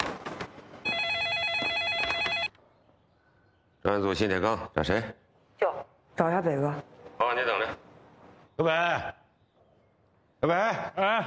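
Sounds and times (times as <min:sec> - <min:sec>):
telephone ringing with an electronic trill: 0:00.8 - 0:02.6
speech: 0:03.9 - 0:05.2, 0:06.2 - 0:07.8, 0:08.6 - 0:09.2, 0:10.4 - 0:11.2.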